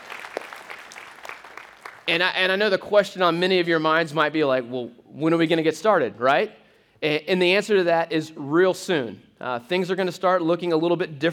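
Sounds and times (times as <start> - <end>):
small crowd applauding: 0.0 - 2.1
speech: 2.1 - 11.3.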